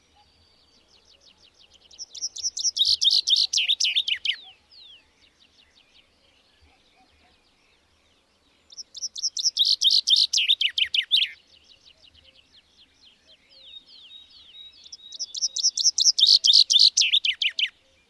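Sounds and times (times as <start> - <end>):
bird chirping: 0.0 - 18.0.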